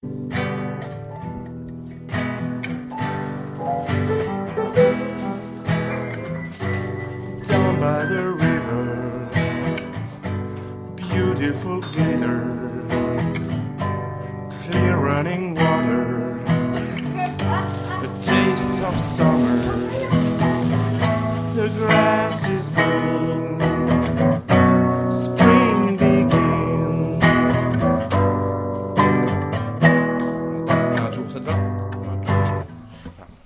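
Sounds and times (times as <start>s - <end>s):
guitar playing: 0.0s - 33.1s
person singing: 3.7s - 10.2s, 11.0s - 13.6s, 14.5s - 28.0s.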